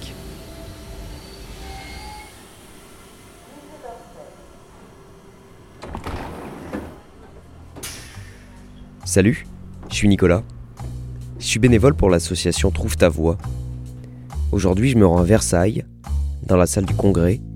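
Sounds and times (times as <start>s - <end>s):
RER commuter train sliding doors hissing open and closed: 0.0s - 9.0s
faint tonal whines inside an RER commuter train: 0.0s - 11.4s
low rumble and hum inside an RER commuter train: 3.4s - 12.9s
speech: 9.1s - 10.5s, 11.4s - 13.6s, 14.5s - 15.9s, 16.5s - 17.5s.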